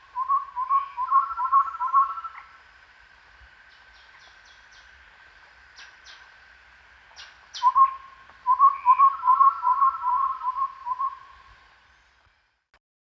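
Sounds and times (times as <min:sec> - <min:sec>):
chestnut-rumped babbler calling: 0:00.0 - 0:02.6, 0:03.7 - 0:05.0, 0:05.7 - 0:06.4, 0:07.1 - 0:12.2.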